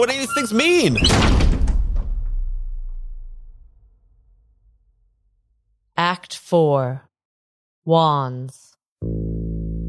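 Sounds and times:
speech: 0.0s - 1.6s, 6.5s - 7.1s, 7.9s - 9.4s
door slammed shut hard: 0.6s - 4.3s.

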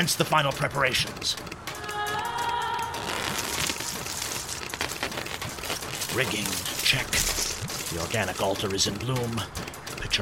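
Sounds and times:
speech: 0.0s - 1.6s, 6.2s - 10.2s
rain pattering on a leafy covering overhead: 2.2s - 8.9s.

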